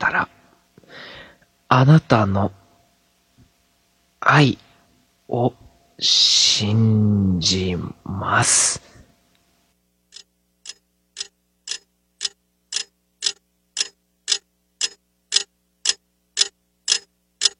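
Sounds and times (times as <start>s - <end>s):
speech: 1.7s - 2.6s, 4.2s - 4.6s, 5.3s - 8.9s
cheap alarm clock ticking: 10.1s - 17.5s.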